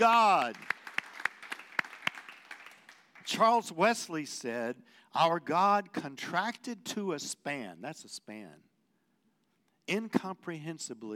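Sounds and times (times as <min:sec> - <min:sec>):
speech: 0:00.0 - 0:00.8, 0:03.3 - 0:08.7, 0:09.9 - 0:11.1
crowd clapping and applauding: 0:00.0 - 0:03.5.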